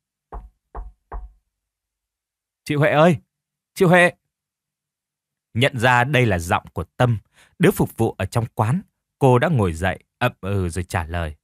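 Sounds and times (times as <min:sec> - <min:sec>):
knocking on a door from outside: 0:00.3 - 0:01.4
speech: 0:02.7 - 0:04.2, 0:05.5 - 0:11.4.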